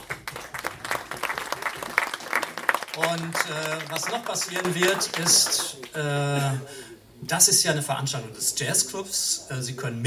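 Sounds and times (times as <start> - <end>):
audience applause at a jazz club event: 0.0 - 6.0
speech: 3.0 - 10.0.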